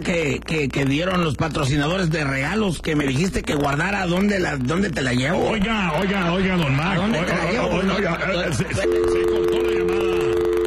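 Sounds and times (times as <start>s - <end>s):
speech: 0.0s - 9.8s
steady electronic telephone tone after a call is cut off: 8.7s - 10.6s.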